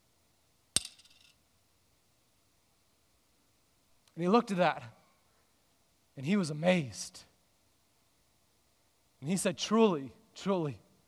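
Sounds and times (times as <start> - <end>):
small copper coins dropping into an offering box: 0.8 - 1.4
speech: 4.2 - 5.0, 6.2 - 7.3, 9.2 - 10.8.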